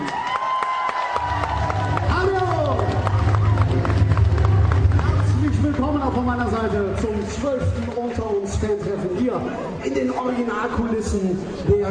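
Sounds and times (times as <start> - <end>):
audience cheering with shouts and whoops: 0.0 - 5.8
large audience clapping: 0.0 - 8.9
speech: 8.6 - 11.8.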